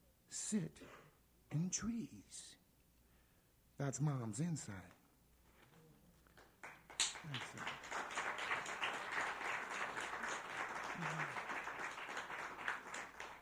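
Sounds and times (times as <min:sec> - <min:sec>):
speech: 0:00.5 - 0:02.6, 0:03.8 - 0:05.0, 0:07.2 - 0:07.9, 0:11.0 - 0:11.5
audience applauding: 0:06.4 - 0:13.4.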